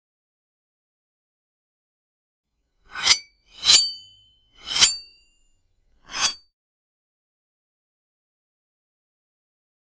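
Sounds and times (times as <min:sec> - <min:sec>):
sword unsheathing: 0:02.9 - 0:05.1, 0:06.1 - 0:06.4.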